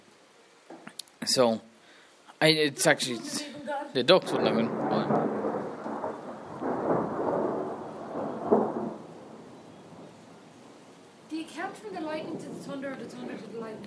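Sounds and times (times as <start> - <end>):
heavy rainstorm: 0.0 - 13.8
speech: 1.2 - 1.7, 2.4 - 5.1, 12.3 - 13.8
low rolling thunder in a heavy rainstorm: 4.0 - 10.5, 11.5 - 13.8.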